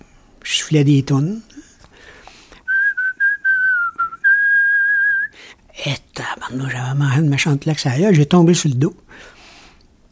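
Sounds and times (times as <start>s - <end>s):
speech: 0.7s - 1.5s, 6.6s - 9.3s
person whistling a short melodic tune: 2.6s - 5.4s.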